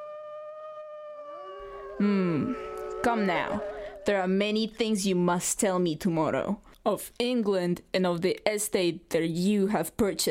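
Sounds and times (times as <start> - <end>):
wolves howling: 0.0 - 4.5
speech: 2.0 - 10.2.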